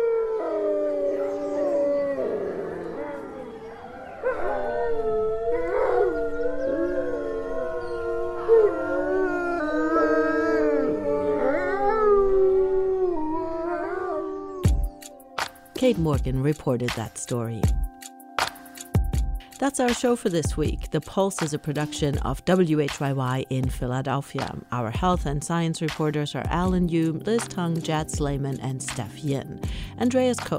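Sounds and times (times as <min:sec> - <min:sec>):
wolves yipping: 0:00.0 - 0:12.4
wolf pack howling together: 0:00.0 - 0:15.4
speech: 0:15.9 - 0:17.8, 0:19.6 - 0:30.5.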